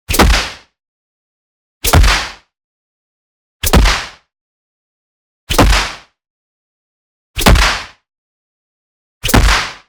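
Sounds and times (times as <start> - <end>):
fast punch strike: 0.1 - 0.6, 1.8 - 2.4, 3.6 - 4.2, 5.5 - 6.1, 7.4 - 8.0, 9.2 - 9.8.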